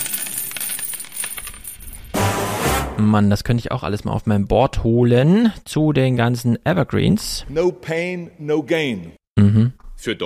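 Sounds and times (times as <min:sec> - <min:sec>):
coin bouncing and clinking: 0:00.0 - 0:02.2
speech: 0:03.0 - 0:10.2.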